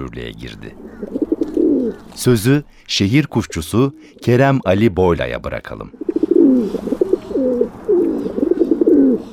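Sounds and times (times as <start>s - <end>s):
speech: 0.0s - 6.9s
rock pigeon cooing: 0.8s - 2.2s, 3.4s - 4.2s, 6.0s - 9.3s.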